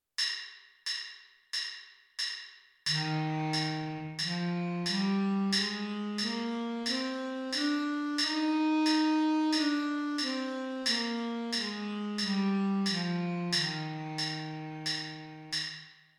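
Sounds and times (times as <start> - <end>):
alto sax playing C major scale in lower octave: 2.9 - 15.6.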